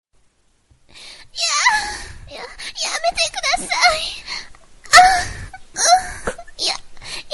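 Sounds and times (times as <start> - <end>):
cute anime voice: 1.4 - 4.2, 4.9 - 7.3.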